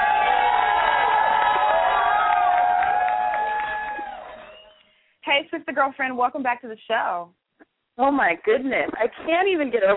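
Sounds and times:
crowd cheering and whooping: 0.0 - 4.9
scattered clapping: 0.0 - 4.9
speech: 5.8 - 7.4, 8.0 - 9.9.

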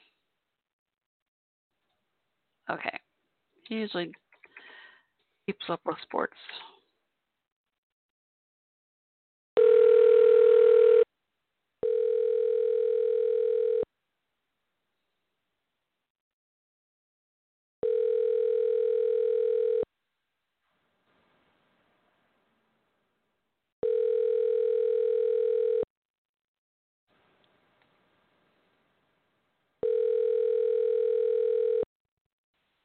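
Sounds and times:
speech: 2.7 - 3.0, 3.7 - 4.2, 5.5 - 6.7
outgoing phone call ringback tone: 9.6 - 11.1, 11.8 - 13.9, 17.8 - 19.9, 23.8 - 25.9, 29.8 - 31.9.

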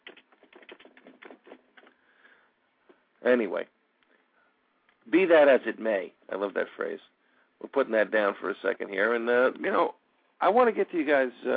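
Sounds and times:
typing on a computer keyboard: 0.0 - 1.9
speech: 3.2 - 3.8, 5.1 - 11.5.

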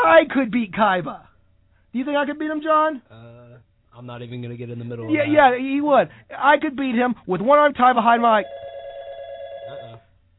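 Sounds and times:
faint noise: 0.0 - 10.3
speech: 0.2 - 1.3, 1.9 - 3.3, 4.0 - 8.7
telephone ringing with electronic trill: 8.1 - 10.1.

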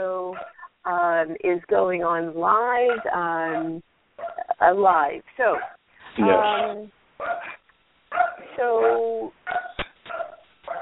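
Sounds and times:
dog barking and yelping: 0.3 - 0.7, 2.7 - 4.5, 5.5 - 10.8
speech: 1.2 - 3.9, 4.6 - 7.0, 8.6 - 9.4.

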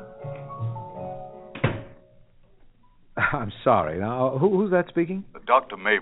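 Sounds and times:
door pushed shut with a solid thud: 1.5 - 2.0
speech: 3.3 - 6.0.

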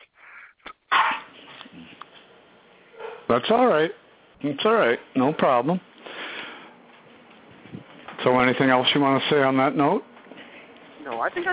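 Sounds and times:
dogs barking: 0.9 - 1.4, 2.9 - 3.4
speech: 3.3 - 5.9, 8.3 - 10.1, 11.1 - 11.5.

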